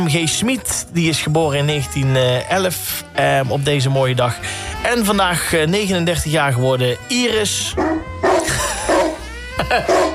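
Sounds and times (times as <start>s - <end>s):
speech: 0.0s - 8.0s, 9.7s - 10.1s
dog yipping and barking: 7.8s - 9.2s, 9.8s - 10.1s
laughter: 8.4s - 10.1s.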